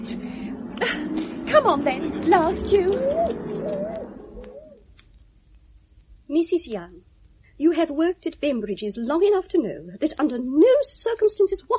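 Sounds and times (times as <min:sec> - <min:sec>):
steady murmur: 0:00.0 - 0:04.8
bird calling with soft low cooing notes: 0:00.0 - 0:04.9
speech: 0:01.6 - 0:03.5, 0:06.3 - 0:11.7.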